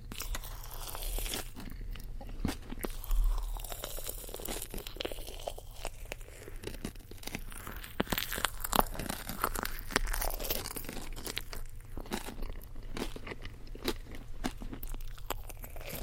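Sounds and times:
soft squishy chewing of a jelly-filled marshmallow: 0.0s - 16.0s.

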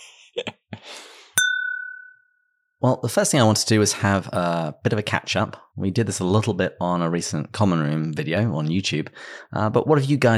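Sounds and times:
glasses clinking in a toast: 1.4s - 2.3s
speech: 2.8s - 10.3s.

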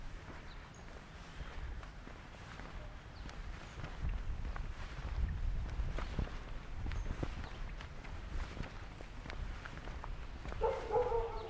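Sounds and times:
low street noise: 0.0s - 11.4s
soft shuffling footsteps: 0.0s - 11.4s
dogs barking in a street: 10.5s - 11.4s.

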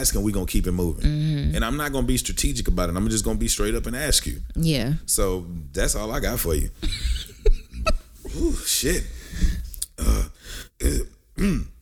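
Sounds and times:
speech: 0.0s - 9.2s
throaty burps: 10.9s - 11.8s.

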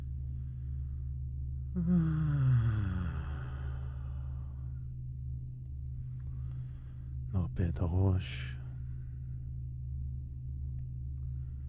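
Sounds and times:
steady low hum: 0.0s - 11.6s
speech: 1.8s - 2.4s, 7.4s - 8.6s
deliberate drawn-out yawn: 1.8s - 4.1s.

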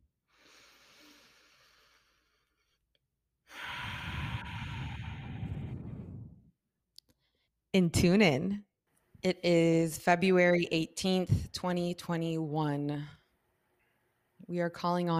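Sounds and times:
deep breath taken during a guided breathing moment: 0.3s - 2.7s, 3.5s - 6.5s
breathy rush of air: 3.5s - 6.5s
speech: 7.8s - 13.2s, 14.5s - 15.1s.

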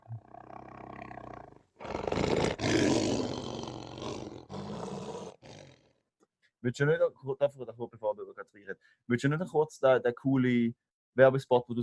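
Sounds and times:
lion roaring: 0.0s - 5.9s
speech: 6.6s - 11.8s.

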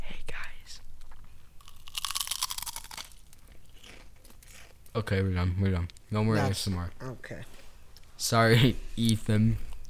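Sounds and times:
chewing Pringles potato chips into the microphone: 1.0s - 5.0s
speech: 5.0s - 7.6s, 8.2s - 9.7s.

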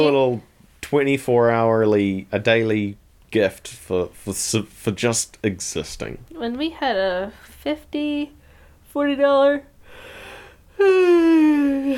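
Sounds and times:
speech: 0.0s - 8.4s, 9.0s - 9.7s, 10.8s - 11.9s
person yawning: 10.7s - 11.9s.

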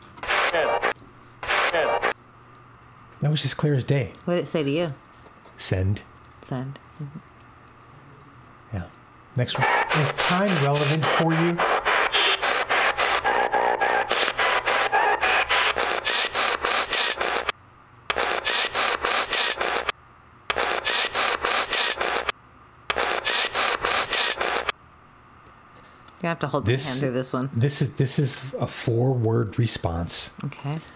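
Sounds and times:
harsh broadband static in choppy bursts: 0.2s - 2.2s, 9.5s - 17.5s, 18.1s - 19.9s, 20.5s - 22.3s, 22.9s - 24.7s
speech: 1.7s - 2.1s, 3.2s - 5.0s, 5.6s - 7.3s, 8.7s - 11.8s, 26.3s - 30.9s.

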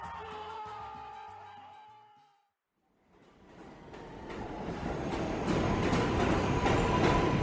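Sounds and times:
subway train rumbling: 2.8s - 7.4s.

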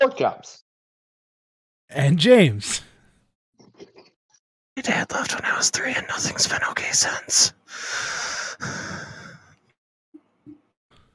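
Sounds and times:
speech: 0.0s - 0.6s, 1.9s - 2.9s, 4.8s - 9.2s
heavy breathing: 7.6s - 9.6s.

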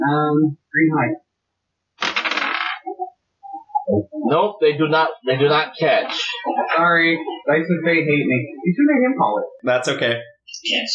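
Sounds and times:
speech: 0.0s - 1.2s, 3.9s - 10.9s
dice rolling on a table: 2.0s - 2.9s
laughter: 4.4s - 9.4s.

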